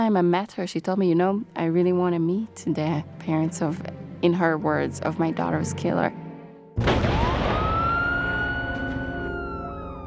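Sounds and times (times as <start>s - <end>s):
speech: 0.0s - 6.2s, 6.8s - 7.2s
ambulance emergency siren wailing: 7.0s - 10.0s.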